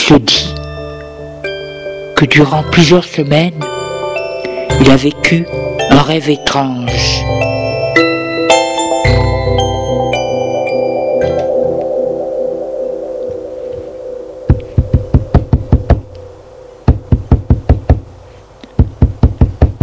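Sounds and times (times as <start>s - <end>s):
gentle musical passage: 0.0s - 19.8s
speech: 2.2s - 3.7s, 4.8s - 7.4s
rapid loud knocking on a door: 14.8s - 16.0s, 16.9s - 18.0s, 18.8s - 19.8s.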